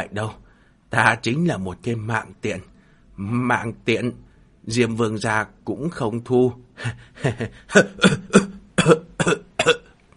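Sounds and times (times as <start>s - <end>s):
speech: 0.0s - 9.0s
harsh wet coughing up blood: 6.8s - 9.9s.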